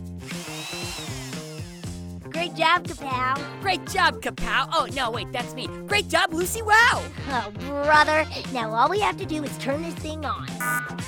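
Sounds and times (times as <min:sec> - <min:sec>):
power drill whirring: 0:00.2 - 0:02.0
speech: 0:02.4 - 0:10.5.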